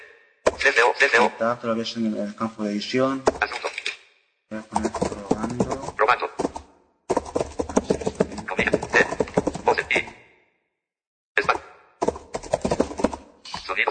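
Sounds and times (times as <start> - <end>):
speech: 0.7 - 3.7, 4.5 - 4.9
typewriter sound effect from a screen reader: 3.3 - 10.1, 11.4 - 13.8.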